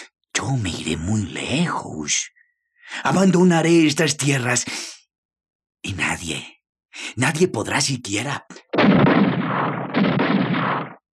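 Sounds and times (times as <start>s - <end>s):
speech: 0.4s - 5.0s, 5.8s - 9.0s
rifle shots: 8.8s - 11.0s.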